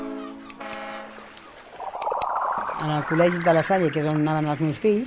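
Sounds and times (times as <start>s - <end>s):
siren wailing: 1.7s - 4.5s
sustained tone: 1.7s - 4.5s
speech: 2.9s - 5.0s.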